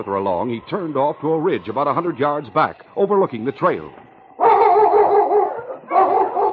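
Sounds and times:
speech: 0:00.0 - 0:04.0
pack of sled dogs barking and yipping: 0:04.3 - 0:06.5.

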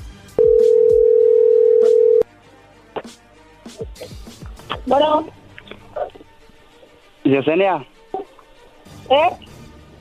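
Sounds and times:
phone call ringing tone: 0:00.4 - 0:02.2
speech: 0:04.9 - 0:05.4, 0:07.3 - 0:07.9, 0:09.1 - 0:09.4.

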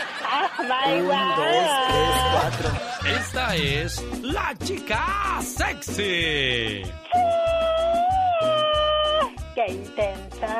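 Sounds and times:
laughter: 0:00.0 - 0:04.1
speech: 0:00.5 - 0:08.0, 0:09.6 - 0:10.5
woman's rapid machine-gun-like high-pitched scream: 0:07.1 - 0:09.3.

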